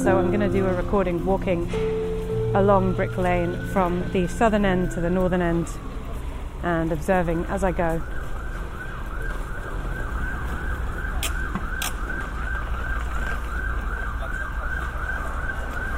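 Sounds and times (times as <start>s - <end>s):
speech: 0.0s - 5.9s, 6.6s - 8.2s
emergency vehicle siren wailing along a street: 0.0s - 15.9s
low rumble of street traffic: 0.0s - 15.9s.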